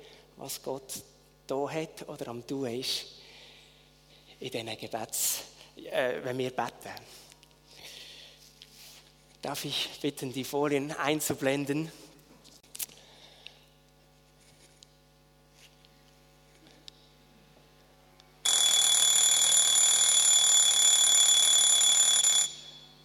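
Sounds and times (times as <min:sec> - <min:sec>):
quiet hum: 0:00.0 - 0:18.5
speech: 0:00.4 - 0:03.2, 0:04.4 - 0:07.3, 0:09.4 - 0:12.0
alarm clock ringing in the morning: 0:18.4 - 0:23.0.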